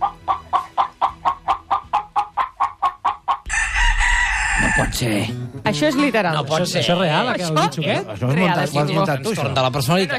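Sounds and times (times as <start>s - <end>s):
Asturian gallino clucking: 0.0s - 5.0s
speech: 5.0s - 10.1s.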